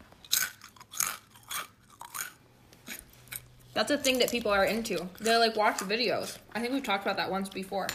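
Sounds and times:
crunching on seasoned chips: 0:00.0 - 0:05.4
speech: 0:03.8 - 0:07.9.

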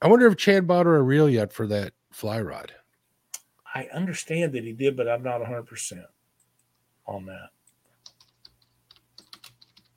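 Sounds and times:
speech: 0:00.0 - 0:02.8, 0:03.7 - 0:06.2, 0:07.1 - 0:07.6
typing on a computer keyboard: 0:08.0 - 0:09.9.

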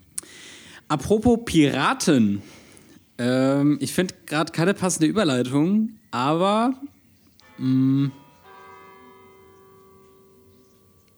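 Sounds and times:
speech: 0:00.9 - 0:02.6, 0:03.2 - 0:06.9, 0:07.6 - 0:08.2
village church bells ringing: 0:08.2 - 0:11.1.

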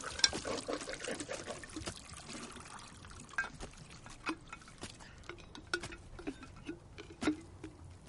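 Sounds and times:
liquid pouring from jars into a clay pot on a porch: 0:00.0 - 0:07.7
small clinks and taps: 0:03.3 - 0:08.0.

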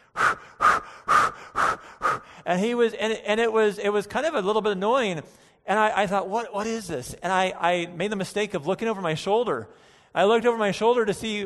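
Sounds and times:
voice imitating heavy panting of a friend running on a track: 0:00.0 - 0:02.6
speech: 0:02.5 - 0:11.4.

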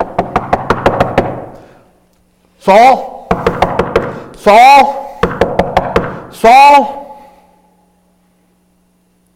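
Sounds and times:
firm knocks on a door: 0:00.0 - 0:01.4, 0:03.3 - 0:04.2, 0:05.2 - 0:06.2
speech: 0:02.6 - 0:03.1, 0:04.4 - 0:05.1, 0:06.4 - 0:07.0.

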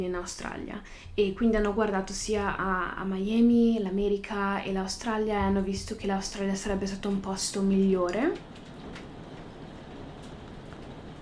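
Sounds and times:
speech: 0:00.0 - 0:08.6
rain falling: 0:08.4 - 0:11.2.

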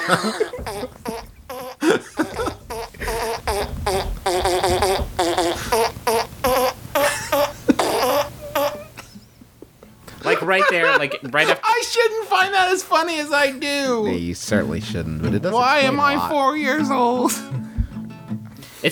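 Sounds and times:
laughter: 0:00.0 - 0:06.3, 0:06.9 - 0:12.0
speech: 0:00.1 - 0:01.2, 0:10.5 - 0:17.5
mouth-made fart noises as a fart piano solo in a song: 0:00.4 - 0:10.1.

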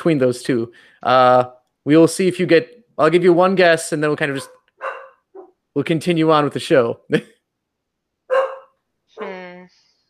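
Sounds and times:
speech: 0:00.0 - 0:04.6, 0:05.8 - 0:07.4
dog barking: 0:04.3 - 0:05.6, 0:08.3 - 0:08.8.

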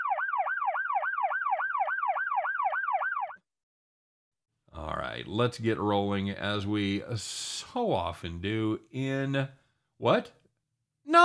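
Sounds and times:
police siren yelping: 0:00.0 - 0:03.4
speech: 0:04.8 - 0:10.4.

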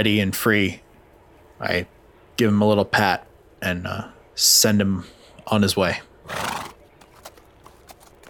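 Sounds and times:
speech: 0:00.0 - 0:00.8, 0:01.6 - 0:06.5
soft hoof clops on the ground: 0:06.3 - 0:08.2
unsaddled horse trotting away: 0:06.3 - 0:08.2.

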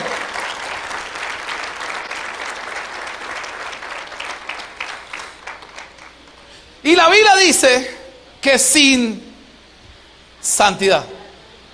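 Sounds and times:
audience applauding loudly: 0:00.0 - 0:06.5
speech: 0:06.9 - 0:09.3, 0:10.5 - 0:11.2.

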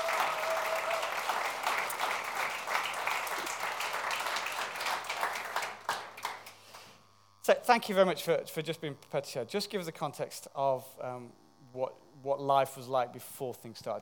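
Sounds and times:
room full of people clapping: 0:00.0 - 0:06.6
speech: 0:07.5 - 0:14.0.

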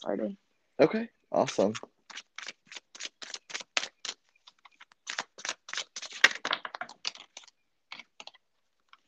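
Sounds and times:
speech: 0:00.0 - 0:02.3
deck of tarot cards being shuffled: 0:01.4 - 0:08.4.

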